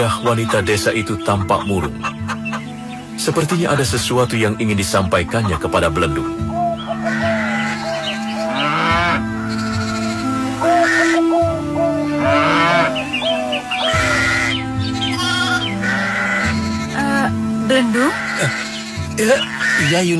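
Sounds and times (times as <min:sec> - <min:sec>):
speech: 0:00.0 - 0:02.2, 0:03.2 - 0:07.2, 0:17.7 - 0:18.6, 0:19.2 - 0:20.1
deep moo-like lows from other animals: 0:00.0 - 0:04.0, 0:04.9 - 0:20.1
flock of sheep and goats bleating in a backyard: 0:07.0 - 0:10.0, 0:12.2 - 0:13.1, 0:13.9 - 0:20.1.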